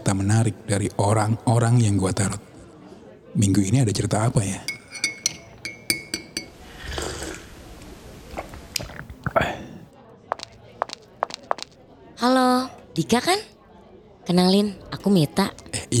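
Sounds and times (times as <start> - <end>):
faint murmuring voices in a busy café: 0.0 - 15.9
speech: 0.1 - 2.5, 3.4 - 4.8, 13.0 - 13.5, 14.3 - 15.9
glasses and cups clinking in a busy café: 4.6 - 6.6.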